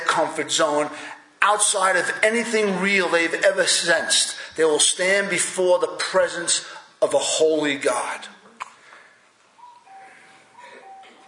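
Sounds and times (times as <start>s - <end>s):
steady outdoor hiss: 0.0s - 11.2s
speech: 0.2s - 8.4s
cuckoo calling a two-note descending phrase: 9.6s - 11.2s.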